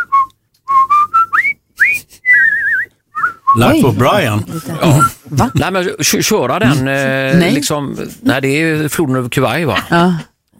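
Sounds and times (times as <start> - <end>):
person whistling a march tune: 0.0 - 3.8
speech: 3.6 - 10.5.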